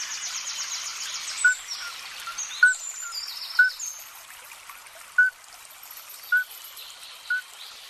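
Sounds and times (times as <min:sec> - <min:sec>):
trickling hiss: 0:00.0 - 0:07.8
male midwife toad mating call: 0:01.4 - 0:03.8.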